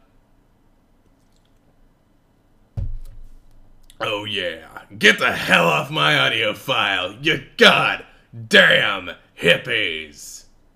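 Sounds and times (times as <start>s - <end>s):
person gulping a sip of water: 1.2s - 1.7s
speech: 4.0s - 10.4s.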